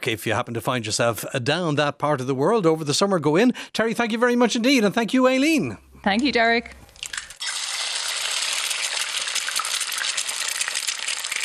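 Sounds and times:
speech: 0.0 - 6.8
egg frying and sizzling in a hot pan: 7.0 - 11.4.

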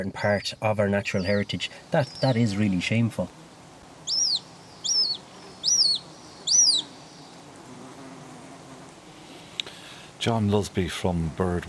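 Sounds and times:
hen harrier calling: 0.0 - 3.2, 4.0 - 7.3
speech: 0.0 - 3.4, 10.2 - 11.6.

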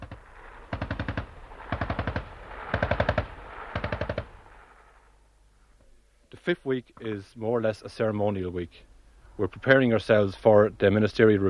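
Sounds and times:
machine-gun fire during a firing drill: 0.0 - 4.9
speech: 6.4 - 11.4.

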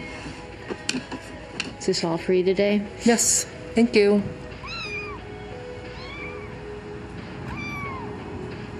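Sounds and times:
hum and murmur of a busy store: 0.0 - 8.7
speech: 1.8 - 4.4
kitten meowing in a supermarket: 4.6 - 6.6, 7.5 - 8.2.

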